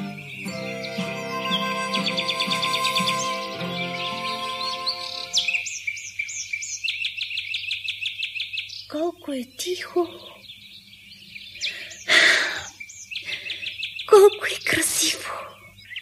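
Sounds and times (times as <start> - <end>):
sustained tonal background: 0.0 - 5.6
birds chirping in a forest: 0.0 - 16.0
speech: 9.4 - 10.3.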